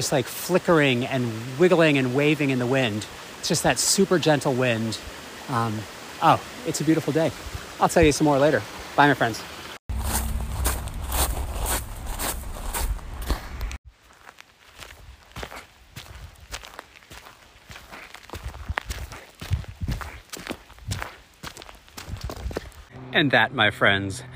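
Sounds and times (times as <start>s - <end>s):
speech: 0.0s - 9.6s, 23.2s - 24.3s
footsteps in shoes full of water after a swim: 9.9s - 22.9s.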